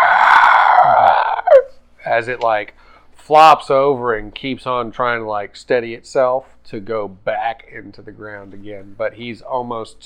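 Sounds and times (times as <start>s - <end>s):
voice imitating a burrowing creature's screech: 0.0s - 1.8s
speech: 2.2s - 10.0s.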